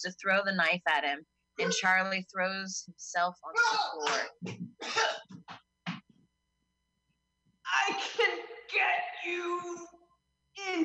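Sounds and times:
speech: 0.0 - 5.6, 7.7 - 10.0, 10.6 - 10.8
man clearing his throat: 4.1 - 5.5.

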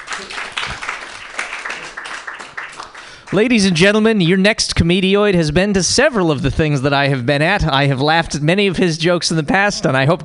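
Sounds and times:
audience clapping for a comedian at an open mic comedy night: 0.0 - 4.0
speech: 0.2 - 0.8, 3.3 - 10.2.

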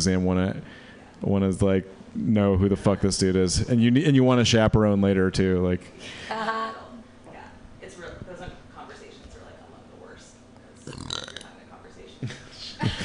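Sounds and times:
speech: 0.0 - 6.8
loud throaty burp: 10.8 - 11.5.

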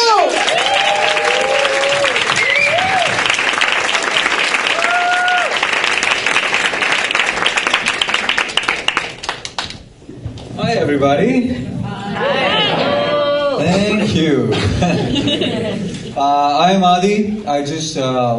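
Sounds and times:
audience cheering and whooping for a comedian at a stand-up show: 0.0 - 6.4, 11.8 - 13.9
audience clapping for a comedian at a stand-up show: 0.0 - 9.8
audience whistling at a stand-up show: 0.5 - 3.4
speech: 10.9 - 11.8, 14.1 - 18.3
laughter: 11.9 - 16.2.

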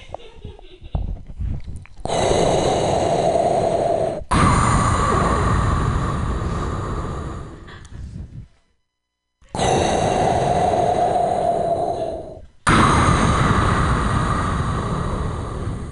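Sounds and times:
voice imitating heavy masked respirator breathing: 2.0 - 8.6, 9.5 - 15.9.

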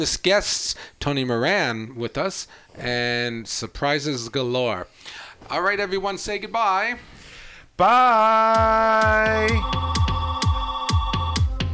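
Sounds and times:
speech: 0.0 - 7.2, 7.8 - 10.0
phone ringing with a loud electronic ringtone: 9.1 - 11.7.

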